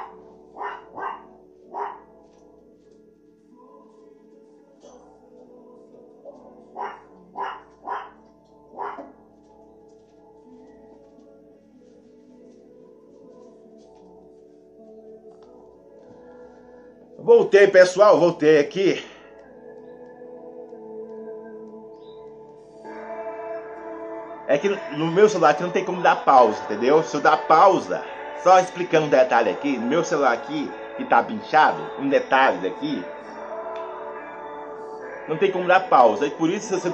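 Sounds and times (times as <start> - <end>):
dogs barking at a home: 0.0 - 2.2, 6.2 - 9.3
speech: 17.2 - 19.1, 24.6 - 33.2, 35.3 - 36.9.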